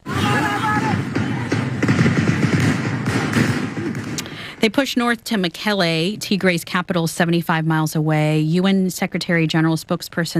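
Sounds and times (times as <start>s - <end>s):
gunfire during fighting in the Tigray region of northern Ethiopia: 0.6s - 4.6s
speech: 4.6s - 10.3s.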